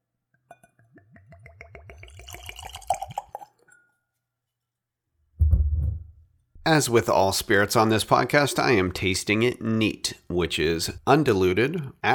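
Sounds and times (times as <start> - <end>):
whiskey glugging from a freshly opened bottle into a clean Glencairn glass: 0.6 - 3.9
dull thump: 5.4 - 6.2
speech: 6.7 - 12.1.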